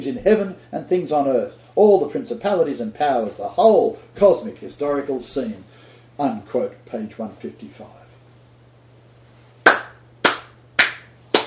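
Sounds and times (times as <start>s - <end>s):
speech: 0.0s - 8.0s
steady low hum: 0.0s - 11.4s
hands clapping: 9.6s - 11.4s.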